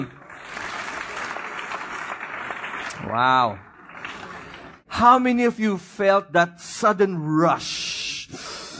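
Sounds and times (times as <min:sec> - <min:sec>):
crowd clapping: 0:00.0 - 0:04.9
speech: 0:03.0 - 0:03.7, 0:05.0 - 0:08.4.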